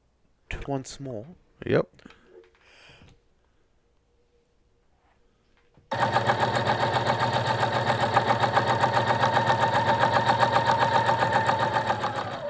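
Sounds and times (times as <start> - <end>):
speech: 0.7 - 2.2
sewing machine running: 5.9 - 12.4.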